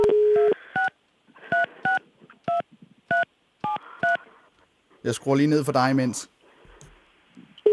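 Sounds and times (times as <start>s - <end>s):
telephone dial tone: 0.0s - 0.6s
faint noise: 0.0s - 7.7s
speech: 5.0s - 6.4s.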